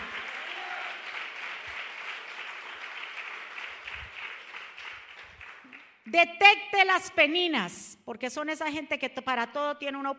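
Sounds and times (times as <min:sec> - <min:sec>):
audience applauding: 0:00.0 - 0:06.0
speech: 0:06.1 - 0:10.1.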